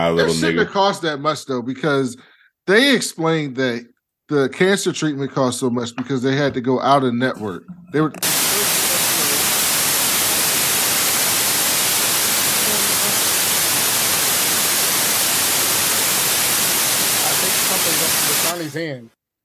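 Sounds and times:
quiet tones: 0.0s - 0.8s, 5.6s - 9.1s
speech: 0.0s - 8.4s
loud harsh static hiss: 8.2s - 19.0s.

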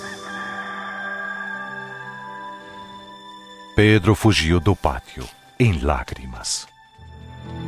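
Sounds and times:
rooster crowing: 0.0s - 3.2s
speech: 3.8s - 6.7s.

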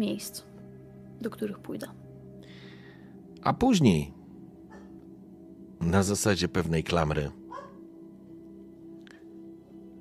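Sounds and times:
speech: 0.0s - 0.5s, 1.2s - 2.0s, 3.4s - 4.2s, 5.8s - 7.4s
dog barking in a train compartment: 4.7s - 5.0s, 7.5s - 7.9s.

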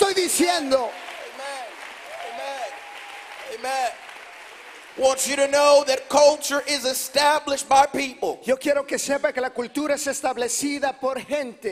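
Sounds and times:
audience clapping hands: 0.0s - 6.0s
speech: 0.4s - 1.9s, 3.5s - 4.1s, 5.0s - 11.6s.

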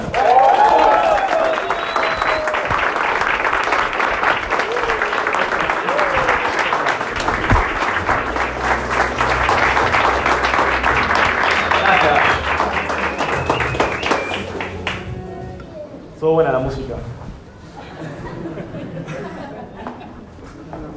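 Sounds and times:
large standing audience applauding to welcome a speaker: 0.0s - 15.4s
audience whoops and whistles: 0.2s - 2.8s, 12.9s - 14.5s
laughter: 17.7s - 20.6s.

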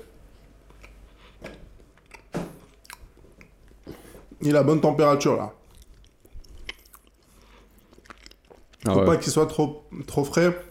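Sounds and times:
chewing a piece of 12-month aged cheese: 0.6s - 4.0s, 5.6s - 9.1s
soft wet mouth sounds: 2.0s - 4.1s, 5.6s - 8.9s
speech: 4.4s - 5.6s, 8.9s - 10.6s.

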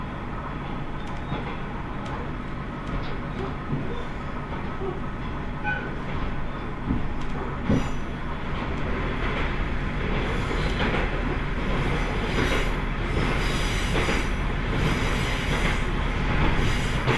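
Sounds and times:
local train rumbling heard from on board: 0.0s - 17.1s
train wheels clacking over rail joints: 0.6s - 17.1s
faint train wheel squeal: 5.6s - 6.7s.

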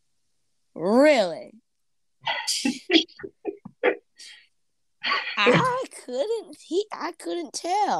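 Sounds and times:
speech: 0.8s - 1.6s, 5.4s - 7.9s
throaty voiced coughing: 2.3s - 4.3s, 5.0s - 5.8s.

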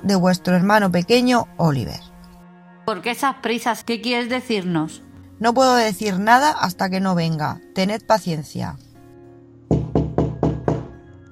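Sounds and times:
speech: 0.0s - 2.1s, 2.9s - 8.8s
firm knocking on a wooden door: 9.7s - 11.0s.

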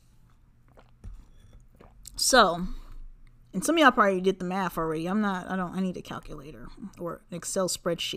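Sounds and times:
swallowing: 0.2s - 3.4s
sipping wine from a glass: 0.7s - 3.0s
speech: 2.2s - 2.8s, 3.6s - 8.1s.

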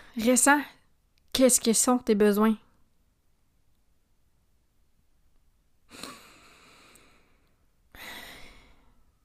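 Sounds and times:
speech: 0.2s - 0.8s, 1.4s - 2.6s
slow deep breath in and out: 5.9s - 9.2s.

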